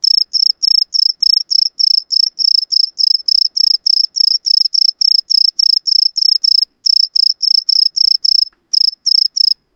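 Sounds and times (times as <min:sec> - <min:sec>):
crickets chirping: 0:00.0 - 0:09.6.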